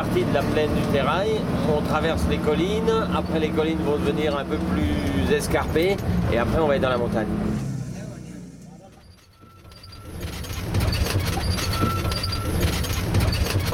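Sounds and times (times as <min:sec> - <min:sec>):
speech: 0:00.0 - 0:07.7
local bus engine rumble on a hill trip in Nepal heard from inside: 0:00.0 - 0:13.7
road noise of a local bus: 0:00.0 - 0:13.7
rattling inside a local bus: 0:01.9 - 0:06.7, 0:08.8 - 0:13.7.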